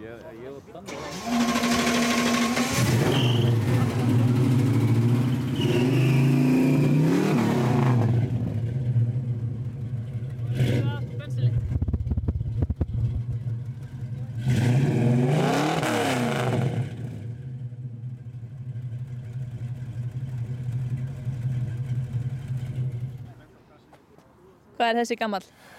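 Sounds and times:
speech: 0.1s - 1.4s, 24.8s - 25.6s
1965 Mustang car engine idling and revving: 0.9s - 23.5s.

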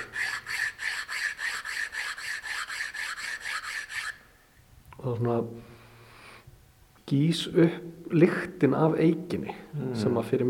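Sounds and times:
sanding wood with sandpaper glued onto an oak board: 0.0s - 4.2s
speech: 5.0s - 5.8s, 7.1s - 10.4s.

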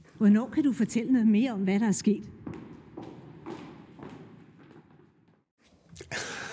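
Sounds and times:
speech: 0.2s - 2.4s
soft footsteps walking away: 1.8s - 5.5s.

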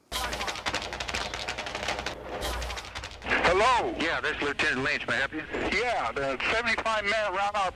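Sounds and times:
rapid crackling gunfire in overlapping bursts: 0.1s - 3.6s
speech: 3.6s - 7.7s.

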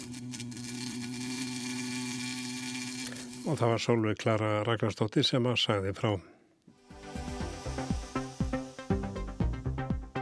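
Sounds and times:
insect buzzing: 0.0s - 3.5s, 6.8s - 9.8s
speech: 3.4s - 6.3s.

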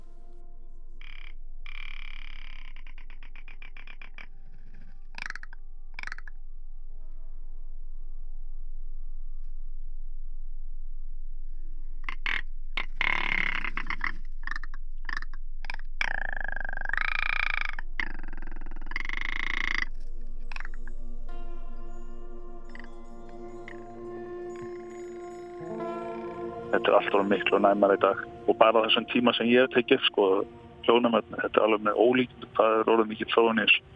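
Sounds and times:
faint outdoor hum: 0.0s - 33.9s
rock ptarmigan croaking and clicking calls: 1.0s - 6.3s, 12.1s - 21.1s, 22.6s - 26.8s
speech: 26.8s - 33.9s.

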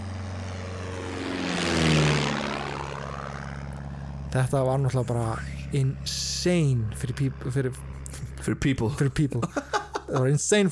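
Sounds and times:
propeller airplane flying overhead: 0.0s - 10.7s
speech: 4.4s - 10.7s
laughter: 9.4s - 10.4s.

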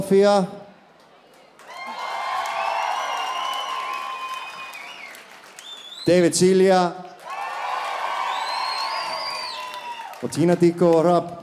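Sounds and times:
speech: 0.0s - 0.6s, 6.1s - 7.1s, 10.2s - 11.4s
audience applause: 1.5s - 6.1s, 7.1s - 10.9s
audience cheering and whoops: 1.6s - 5.8s, 7.2s - 10.3s.

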